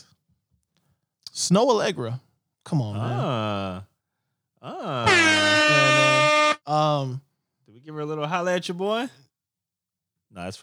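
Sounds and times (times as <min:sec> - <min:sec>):
speech: 0:01.4 - 0:03.9, 0:04.6 - 0:05.8, 0:06.7 - 0:09.2, 0:10.3 - 0:10.6
air horn sound effect blast: 0:05.1 - 0:06.7.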